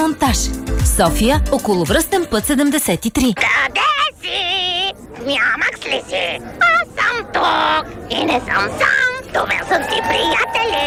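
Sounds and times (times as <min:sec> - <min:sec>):
speech: 0:00.1 - 0:03.8, 0:05.2 - 0:10.8
parrot squawking: 0:03.4 - 0:10.8.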